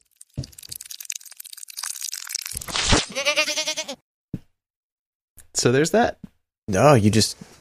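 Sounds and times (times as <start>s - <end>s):
goat bleat played in reverse: 3.0s - 4.0s
speech: 3.2s - 4.0s, 5.6s - 7.5s.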